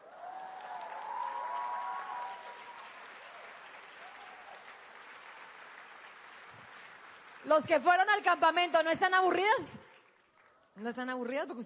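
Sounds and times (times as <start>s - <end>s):
faint voices or cheers: 0.0s - 3.4s
audience clapping: 0.0s - 11.6s
speech: 7.4s - 9.8s, 10.8s - 11.6s.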